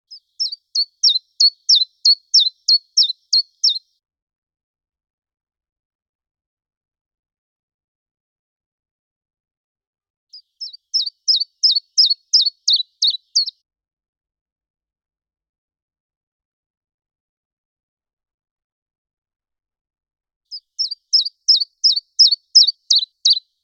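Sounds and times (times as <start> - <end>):
chiffchaff singing: 0.4 - 3.8, 10.6 - 13.5, 20.8 - 23.4.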